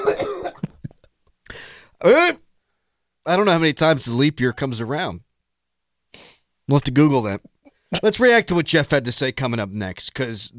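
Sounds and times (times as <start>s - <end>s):
person coughing and choking: 0.0s - 0.9s
speech: 2.0s - 2.5s, 3.2s - 5.2s, 6.1s - 10.5s.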